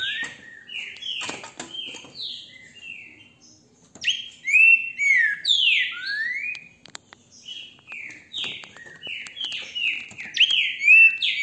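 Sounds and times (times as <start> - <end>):
Green-winged saltator singing rich whistled phrases: 0.0 - 1.2, 4.0 - 6.7, 7.5 - 11.4.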